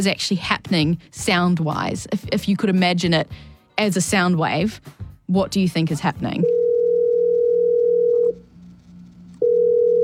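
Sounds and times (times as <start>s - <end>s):
speech: 0.0s - 6.6s
telephone dial tone: 6.4s - 10.0s.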